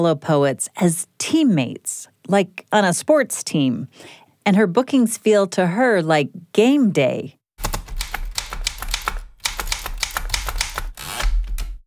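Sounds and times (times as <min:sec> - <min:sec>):
speech: 0:00.0 - 0:07.4
typewriter keys clacking: 0:07.6 - 0:11.8.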